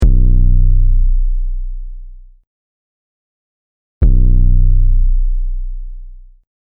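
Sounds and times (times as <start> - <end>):
sub bass: 0.0 - 2.4, 4.0 - 6.4.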